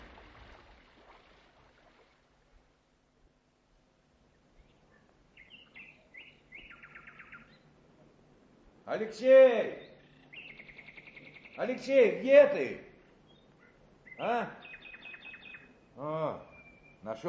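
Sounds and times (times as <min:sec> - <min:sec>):
steady hiss of noise: 0:00.0 - 0:17.2
nightingale singing outdoors: 0:04.6 - 0:07.7, 0:09.8 - 0:11.9, 0:13.0 - 0:17.2
speech: 0:08.9 - 0:09.8, 0:11.6 - 0:12.8, 0:14.2 - 0:14.6, 0:16.0 - 0:17.2.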